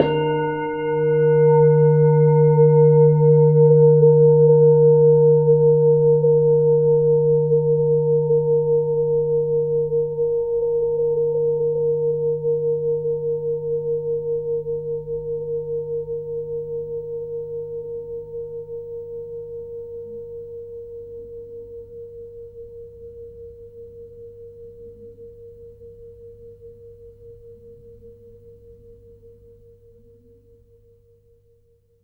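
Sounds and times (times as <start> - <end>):
Tibetan singing bowl: 0.0 - 30.3.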